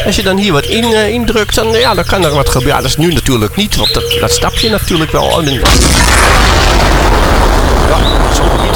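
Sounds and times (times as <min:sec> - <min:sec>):
speech: 0:00.1 - 0:06.7
life-size First World War memorial cannon blast: 0:05.6 - 0:08.7.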